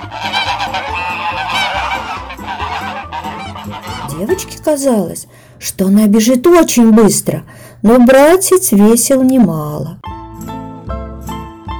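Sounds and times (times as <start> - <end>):
flock of geese honking and cackling: 0.0 - 4.4
speech: 4.2 - 10.1.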